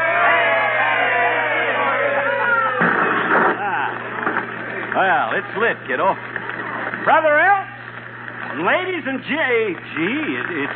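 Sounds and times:
crowd cheering: 0:00.0 - 0:10.7
speech: 0:05.0 - 0:06.4, 0:07.0 - 0:07.7, 0:08.6 - 0:10.7.

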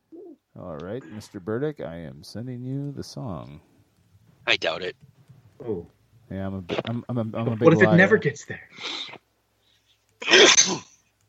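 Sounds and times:
speech: 0:00.6 - 0:03.7, 0:04.5 - 0:09.2, 0:10.2 - 0:10.9
person sneezing: 0:10.2 - 0:11.0.

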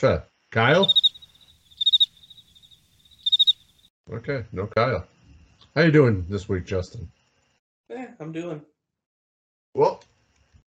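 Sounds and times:
speech: 0:00.0 - 0:01.1, 0:04.1 - 0:05.1, 0:05.8 - 0:07.2, 0:07.9 - 0:08.7, 0:09.8 - 0:10.1
crickets chirping in a high thin trill: 0:00.3 - 0:07.6.

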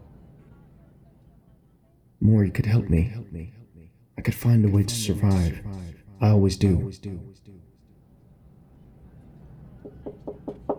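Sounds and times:
speech: 0:02.2 - 0:03.6, 0:04.2 - 0:07.7
soft knocks on a door: 0:09.8 - 0:10.7.

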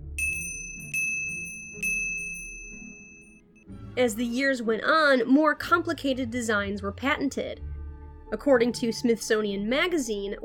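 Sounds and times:
small coffin bell struck: 0:00.0 - 0:03.4
speech: 0:04.0 - 0:07.7, 0:08.3 - 0:10.4.

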